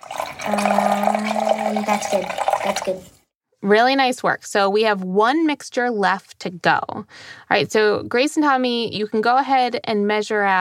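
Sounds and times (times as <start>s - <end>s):
sugar water poured from a bowl into a container: 0.0s - 3.3s
speech: 0.5s - 10.6s.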